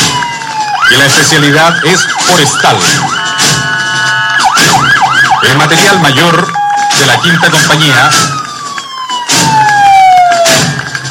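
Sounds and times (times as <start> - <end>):
Iveco Magirus fire truck siren: 0.0 - 11.0
speech: 0.9 - 3.6, 5.4 - 8.5
harsher air-horn-like blasts: 2.9 - 4.8, 6.0 - 7.7.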